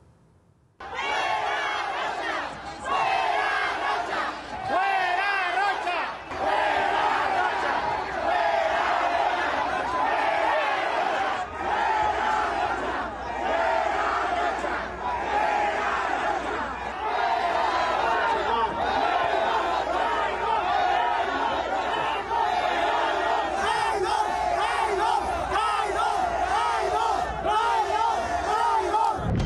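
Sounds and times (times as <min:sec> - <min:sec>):
large crowd chanting a protest slogan in Mazatlan Mexico: 0:00.8 - 0:29.3
overlapping shouts: 0:00.8 - 0:29.3.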